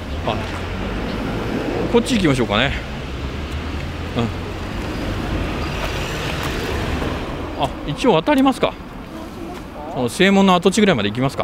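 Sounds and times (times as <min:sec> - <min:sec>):
car driving in at an intersection traffic signal: 0:00.0 - 0:09.9
street traffic: 0:00.0 - 0:11.4
speech: 0:00.2 - 0:00.6, 0:01.9 - 0:03.0, 0:04.2 - 0:04.4, 0:07.6 - 0:08.8, 0:10.0 - 0:11.4.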